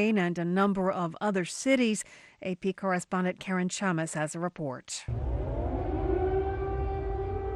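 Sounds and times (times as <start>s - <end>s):
speech: 0.0s - 5.3s
air raid siren wailing during bombardment of Kyiv by Russian airstrikes: 5.1s - 7.5s
low rumble: 5.1s - 7.5s.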